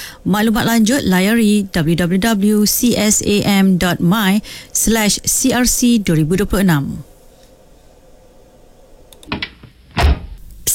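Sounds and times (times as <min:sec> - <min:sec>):
speech: 0:00.2 - 0:07.1
car door closing: 0:10.0 - 0:10.4.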